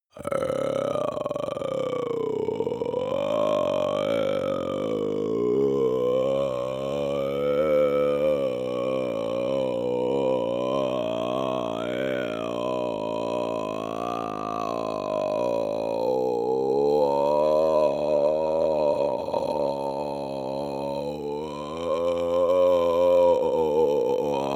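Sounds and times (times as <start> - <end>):
man's long growl from the larynx: 0.1 - 24.5.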